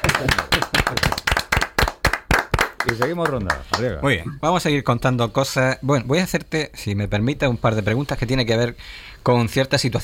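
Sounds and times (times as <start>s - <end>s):
audience applause at a quiz event: 0.0s - 3.9s
speech: 2.9s - 10.0s.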